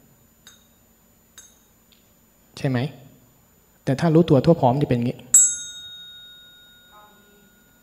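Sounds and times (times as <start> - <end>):
speech: 2.6 - 3.0, 3.9 - 5.3
struck bell ringing with long resonance: 5.4 - 7.8.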